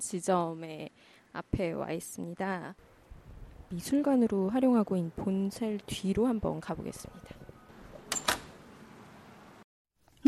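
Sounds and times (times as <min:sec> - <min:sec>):
speech: 0:00.0 - 0:02.9, 0:03.7 - 0:07.5
back door of former bank building art museum opening with mechanical clunks: 0:07.8 - 0:08.7.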